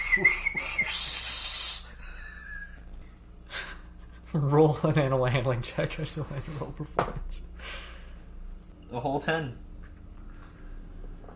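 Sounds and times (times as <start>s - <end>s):
person attempting a weak sputtering whistle: 0.0s - 1.9s
speech: 4.4s - 7.5s, 8.9s - 9.7s.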